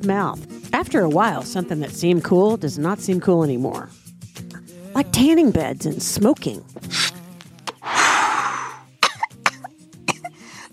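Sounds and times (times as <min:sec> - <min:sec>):
speech: 0:00.0 - 0:04.0, 0:05.0 - 0:07.0
woman coughing: 0:08.6 - 0:10.4.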